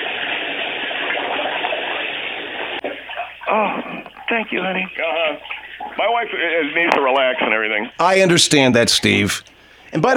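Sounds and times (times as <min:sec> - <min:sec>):
hot water running into a tub: 0:00.0 - 0:07.8
speech: 0:03.5 - 0:10.1.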